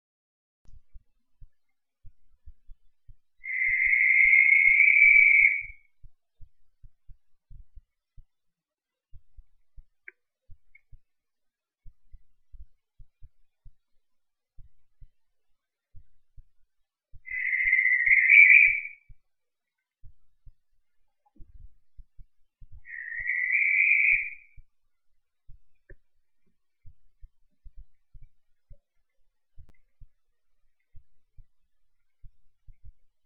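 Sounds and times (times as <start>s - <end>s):
Cape Verde barn owl screaming: 3.4s - 5.7s, 17.3s - 18.9s, 22.9s - 24.4s.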